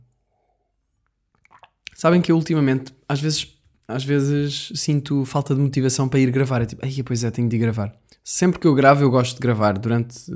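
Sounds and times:
sipping liquid: 0:01.3 - 0:02.3
gulp: 0:01.4 - 0:02.0
soft wet mouth clicks: 0:01.4 - 0:02.0
speech: 0:02.0 - 0:10.3.

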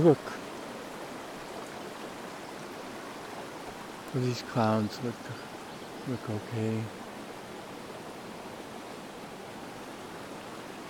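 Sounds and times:
speech: 0:00.0 - 0:00.4, 0:04.1 - 0:07.0
flowing stream water: 0:00.0 - 0:10.8.

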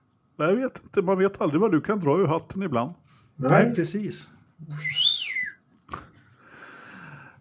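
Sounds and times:
speech: 0:00.4 - 0:05.1
person whistling a sliding wavering tone: 0:04.7 - 0:05.6.

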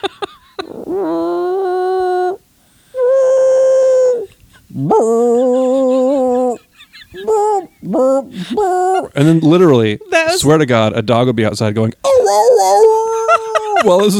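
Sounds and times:
speech: 0:00.0 - 0:00.3, 0:08.4 - 0:12.9, 0:13.8 - 0:14.1
laughter: 0:00.0 - 0:00.8, 0:13.0 - 0:14.1
human voice imitating a trumpet played badly: 0:00.7 - 0:02.4, 0:03.0 - 0:06.6, 0:07.2 - 0:09.2.

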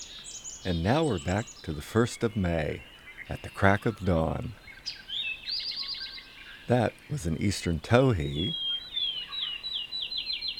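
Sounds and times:
field sparrow song: 0:00.0 - 0:10.5
speech: 0:00.6 - 0:05.0, 0:06.7 - 0:08.6.

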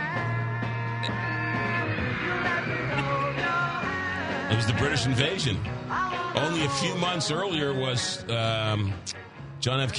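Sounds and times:
live three-chord pop song with drum beat: 0:00.0 - 0:06.4
speech: 0:01.0 - 0:01.3, 0:04.5 - 0:05.8, 0:06.4 - 0:09.9
crowd screaming high-pitched: 0:01.0 - 0:04.0.

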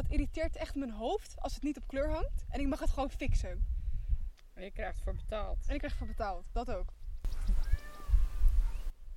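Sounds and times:
speech: 0:00.1 - 0:03.7, 0:04.6 - 0:07.6
peacock giving wailing cat-like calls while fighting a dog: 0:07.3 - 0:08.9.

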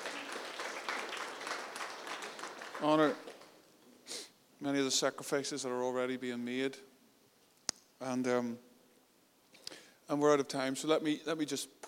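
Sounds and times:
audience applause at a church service: 0:00.0 - 0:03.6
speech: 0:02.8 - 0:03.3, 0:04.6 - 0:06.9, 0:08.0 - 0:08.7, 0:10.1 - 0:11.8.

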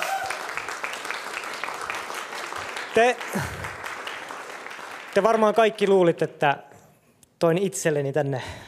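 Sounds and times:
audience applause: 0:00.0 - 0:05.6
speech: 0:02.9 - 0:03.6, 0:05.2 - 0:06.7, 0:07.4 - 0:08.6.

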